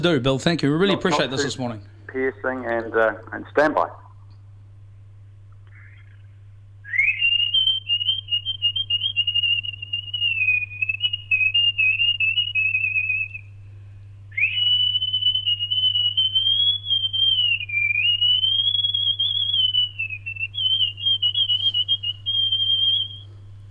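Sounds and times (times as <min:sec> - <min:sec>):
speech: 0:00.0 - 0:04.0
low steady hum: 0:00.0 - 0:23.7
person whistling a nightingale-like warbling melody over the phone: 0:06.9 - 0:13.4, 0:14.4 - 0:23.3.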